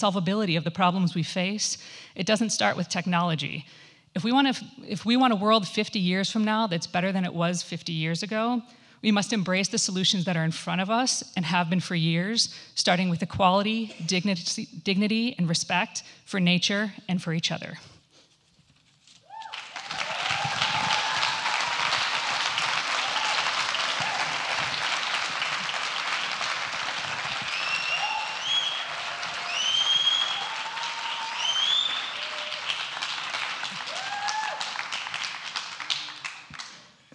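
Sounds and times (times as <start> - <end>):
speech: 0.0 - 17.9
whistles and cheers from an audience: 19.3 - 24.6, 27.4 - 32.9, 33.8 - 34.8
large audience applauding: 19.4 - 36.9.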